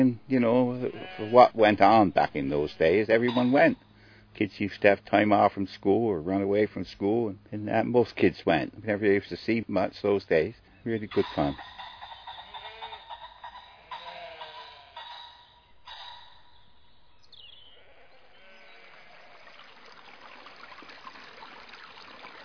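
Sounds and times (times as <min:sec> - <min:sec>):
speech: 0:00.0 - 0:11.8
faint bleat-like calls: 0:00.7 - 0:01.7, 0:12.4 - 0:15.2, 0:17.6 - 0:19.8
River flowing steadily into a coastal town: 0:19.4 - 0:22.4.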